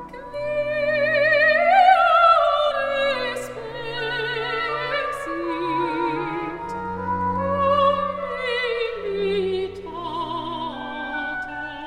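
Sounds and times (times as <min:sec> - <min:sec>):
opera singer singing a Baroque piece: 0:00.1 - 0:11.8.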